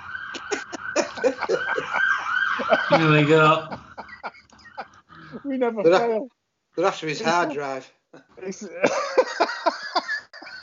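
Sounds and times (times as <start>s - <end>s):
emergency vehicle sirens wailing: 0.0s - 5.7s
laughter: 0.3s - 6.2s, 6.8s - 7.6s, 8.5s - 10.6s
speech: 2.6s - 3.8s, 5.4s - 9.1s.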